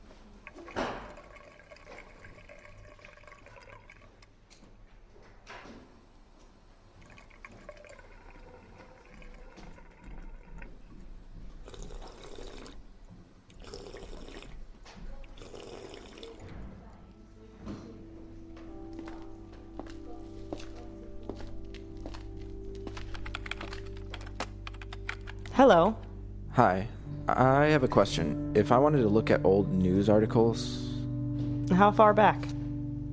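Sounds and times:
faint indoor noise: 0.0 - 28.0
water filling a bottle at a water fountain: 0.2 - 4.3, 6.8 - 16.5
speech: 25.6 - 26.0, 26.6 - 30.8, 31.7 - 32.5.

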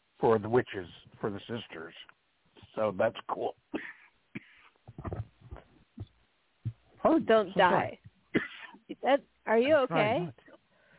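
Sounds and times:
speech: 0.2 - 2.2, 2.8 - 3.9, 7.0 - 8.0, 9.0 - 10.4
person with a persistent cough coughing harshly: 3.7 - 4.7, 8.4 - 8.9.

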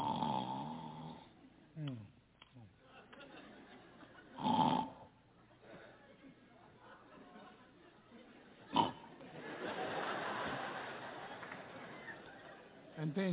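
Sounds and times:
man imitating loud rough snoring: 0.0 - 2.0, 4.4 - 5.1, 8.7 - 9.1
laughter: 2.6 - 4.4, 5.3 - 13.3.

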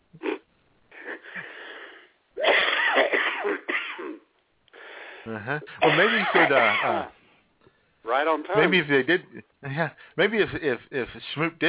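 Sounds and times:
harsh wheezy coughing: 2.4 - 4.3, 5.8 - 7.1
speech: 5.3 - 7.2, 8.1 - 11.6.

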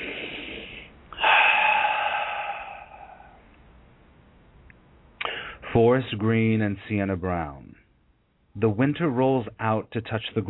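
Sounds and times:
deep breath during a guided meditation invocation: 0.0 - 3.5, 5.2 - 5.6
speech: 5.8 - 7.8, 8.6 - 10.4.

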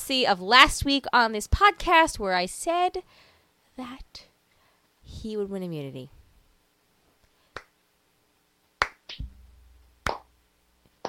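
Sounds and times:
speech: 0.1 - 4.3, 5.1 - 6.2
scattered sharp hand claps: 8.8 - 9.2, 10.0 - 10.3
soft low thump: 9.2 - 9.8.

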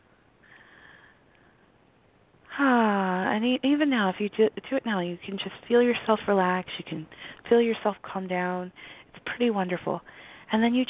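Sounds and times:
soft deep belly breath drawn in through the nose: 0.4 - 1.2
speech: 3.4 - 10.8.

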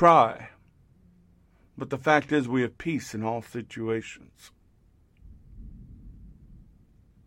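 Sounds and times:
speech: 0.0 - 0.5, 1.8 - 4.6
thunder rumbling: 5.3 - 7.2.

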